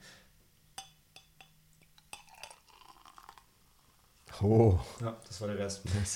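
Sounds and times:
glassy clinks of champagne glass: 0.8s - 3.4s
champagne fizzing as it is poured into a glass: 2.0s - 4.0s
speech: 4.4s - 6.1s.

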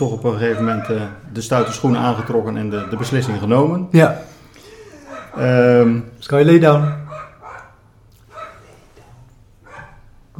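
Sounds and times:
speech: 0.0s - 4.3s, 5.3s - 7.0s
dog barking: 0.4s - 3.7s, 5.1s - 6.0s, 6.6s - 8.8s, 9.6s - 10.2s.

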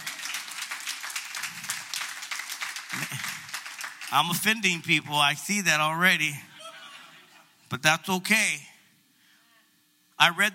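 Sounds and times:
congregation applause: 0.0s - 4.6s
laughter: 2.9s - 3.6s, 6.5s - 7.6s
speech: 3.0s - 3.4s, 4.1s - 6.5s, 7.7s - 8.7s, 10.2s - 10.5s.

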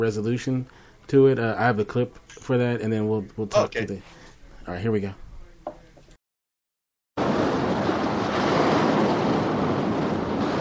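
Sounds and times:
speech: 0.0s - 5.2s
ocean surf roaring: 7.2s - 10.6s
wind: 7.2s - 10.6s.

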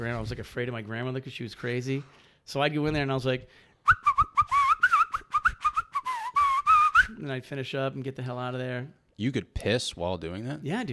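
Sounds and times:
speech: 0.0s - 4.3s, 7.2s - 10.9s
person whistling a quick run of warbling notes: 3.8s - 7.2s.

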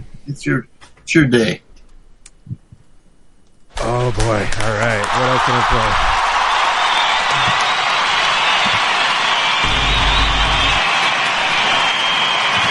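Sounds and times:
speech: 0.3s - 1.6s, 4.1s - 6.1s
dense arena crowd chanting and cheering: 5.0s - 12.6s
low rumble: 9.7s - 10.8s.

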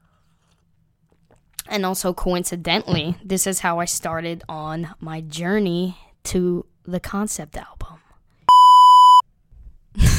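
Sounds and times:
speech: 1.7s - 7.8s
16-gigabyte phone storage-full alert beep: 8.5s - 9.2s
burst of laughter-like vocal noise: 10.0s - 10.1s.

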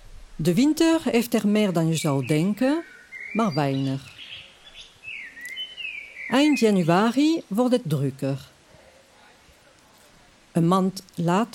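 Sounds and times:
speech: 0.4s - 4.2s, 6.3s - 8.5s, 10.6s - 11.5s
birds singing outdoors in urban bird reserve: 1.4s - 7.5s.

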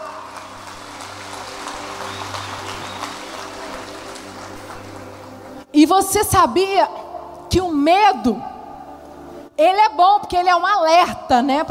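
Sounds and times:
large audience applauding: 0.0s - 5.6s
speech: 5.8s - 7.0s, 7.6s - 8.5s, 9.6s - 11.6s.

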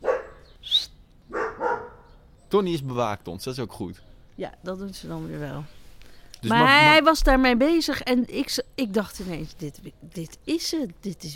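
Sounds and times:
dog barking: 0.0s - 0.5s, 1.3s - 2.2s
speech: 2.5s - 5.8s, 6.4s - 11.3s.

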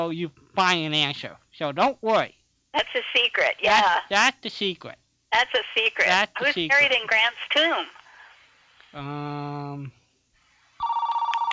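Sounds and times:
speech: 0.0s - 8.0s, 8.9s - 10.0s
telephone ringing: 10.8s - 11.5s.

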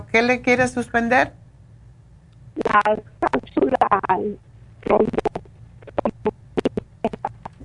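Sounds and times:
speech: 0.1s - 1.4s, 2.6s - 5.3s
distorted choppy voice over a bad phone line: 2.6s - 7.4s.

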